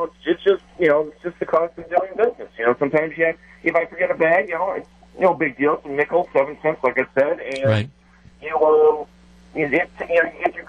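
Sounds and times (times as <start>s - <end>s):
speech: 0.0s - 10.6s
steady low hum: 0.0s - 10.6s
thin tinny voice through a cell phone line: 7.5s - 7.9s.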